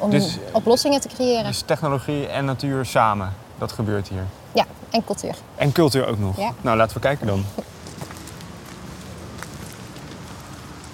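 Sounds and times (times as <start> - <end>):
speech: 0.0 - 7.8
footsteps crunching along an outdoor path through a gate: 7.4 - 10.9.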